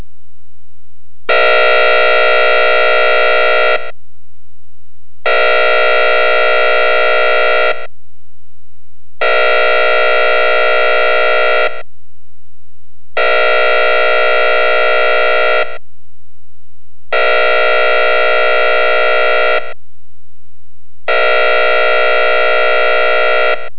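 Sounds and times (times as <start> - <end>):
all clear alarm air horn: 1.3 - 4.0, 5.2 - 7.9, 9.2 - 11.9, 13.2 - 15.8, 17.1 - 19.8, 21.0 - 23.7.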